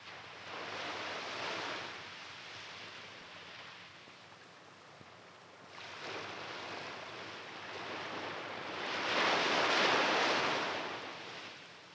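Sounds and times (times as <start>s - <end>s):
gentle little waves washing onto the sand of a beach: 0.0s - 11.9s.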